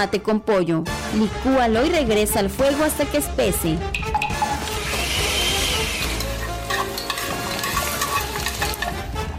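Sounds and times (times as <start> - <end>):
speech: 0.0 - 4.2
steaks frying in hot oil in a pan: 4.6 - 9.0
stirring scrapes: 5.8 - 9.0.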